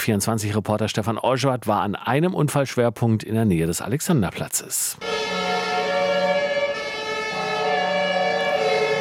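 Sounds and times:
speech: 0.0s - 5.5s
fire engine siren wailing in city traffic: 5.0s - 8.9s.

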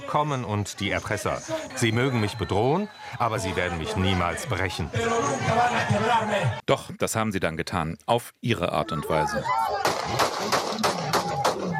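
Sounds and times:
noisy crowded background: 0.0s - 6.7s, 8.6s - 11.7s
speech: 0.1s - 11.1s
sharp gunshots recorded on a mobile phone: 9.8s - 11.7s.

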